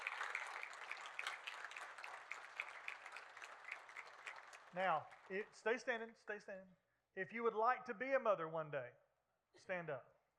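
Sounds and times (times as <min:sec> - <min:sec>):
large crowd applauding: 0:00.0 - 0:05.8
speech: 0:04.7 - 0:09.0, 0:09.6 - 0:10.1.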